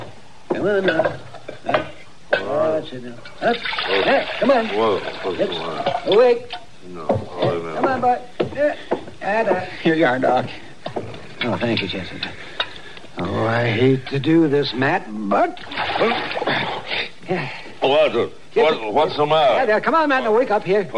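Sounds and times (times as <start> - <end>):
speech: 0.6 - 1.3, 2.8 - 10.6, 11.4 - 12.4, 13.2 - 16.3, 17.3 - 20.9
water pouring: 3.3 - 6.3, 15.6 - 16.8.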